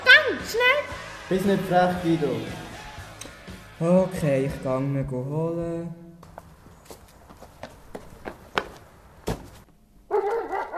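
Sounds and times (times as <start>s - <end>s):
speech: 1.3s - 2.6s, 3.8s - 6.0s
footsteps tapping: 6.2s - 9.8s
dog barking: 10.1s - 10.7s.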